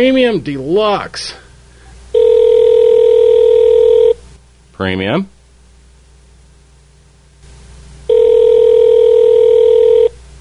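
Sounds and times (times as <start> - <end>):
speech: 0.0 - 1.4, 4.8 - 5.4
long steady phone line ringback tones: 2.1 - 4.2, 8.1 - 10.2.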